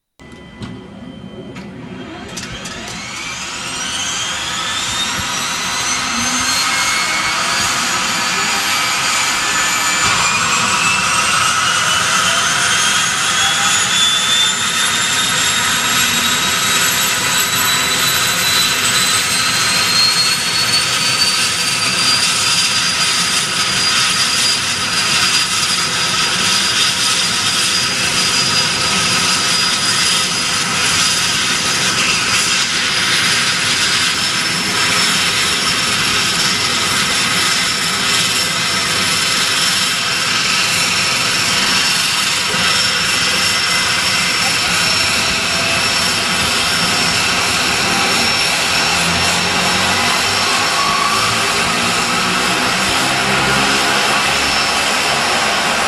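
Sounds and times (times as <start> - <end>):
Pilatus Porter turboprop engine starting up and idling: 0.2 - 55.8.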